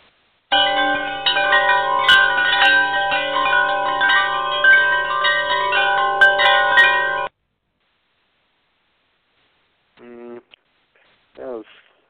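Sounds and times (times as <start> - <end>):
wind chimes sound effect from an audio file: 0.5 - 7.3
person speaking: 10.0 - 10.6.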